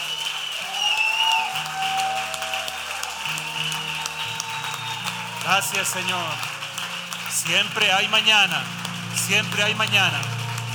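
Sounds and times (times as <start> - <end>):
audience applauding: 0.0 - 10.7
sustained keyboard chords: 3.1 - 10.7
speech: 5.5 - 6.5, 7.4 - 10.3.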